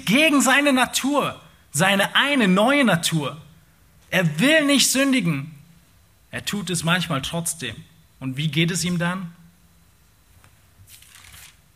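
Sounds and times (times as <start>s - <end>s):
speech: 0.1s - 3.5s, 4.1s - 5.6s, 6.3s - 9.4s
single book page turning: 10.4s - 11.7s.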